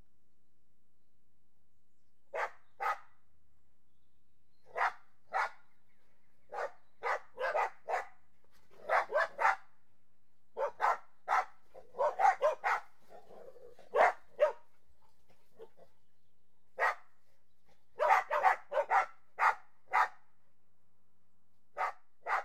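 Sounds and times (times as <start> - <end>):
Border Collies and Labradors barking while playing: 2.4 - 3.0, 4.7 - 5.6, 6.5 - 8.1, 8.8 - 9.6, 10.6 - 14.6, 16.8 - 17.0, 18.0 - 20.2, 21.8 - 22.4.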